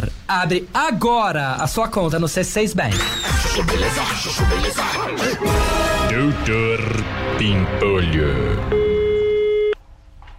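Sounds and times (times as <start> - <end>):
speech: 0.0 - 8.9
electronic telephone tone of an unanswered call: 8.7 - 9.8.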